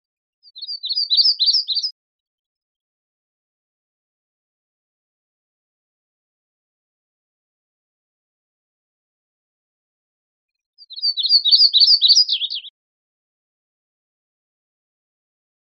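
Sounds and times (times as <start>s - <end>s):
yellow-rumped warbler chipping: 0.5s - 1.9s, 10.8s - 12.7s.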